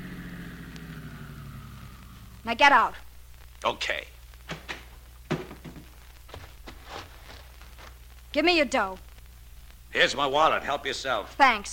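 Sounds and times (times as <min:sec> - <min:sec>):
car engine idling: 0:00.0 - 0:03.4
speech: 0:02.4 - 0:04.2, 0:08.4 - 0:09.1, 0:10.0 - 0:11.7.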